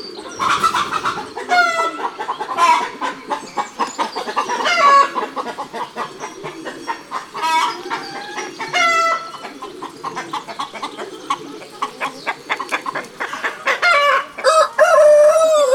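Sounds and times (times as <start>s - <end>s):
hens squawking and clucking: 0.0s - 15.7s
rooster crowing: 13.8s - 15.7s.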